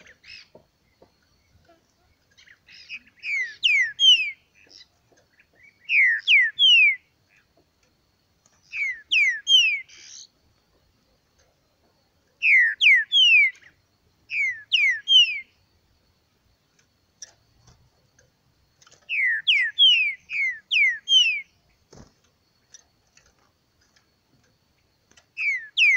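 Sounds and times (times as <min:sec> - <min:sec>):
green-winged saltator song of downslurred whistled notes: 0:02.3 - 0:07.4, 0:08.6 - 0:10.3, 0:12.4 - 0:15.6, 0:19.0 - 0:21.6, 0:25.4 - 0:25.9.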